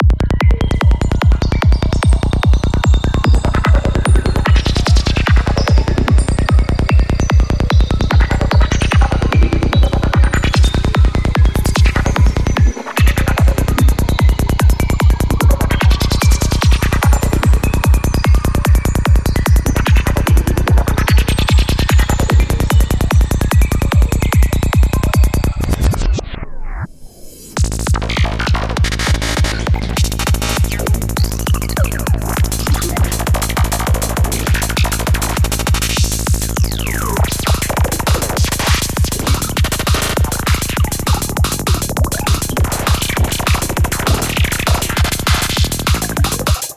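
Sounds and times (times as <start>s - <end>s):
psytrance bass synth: 0.0s - 46.7s.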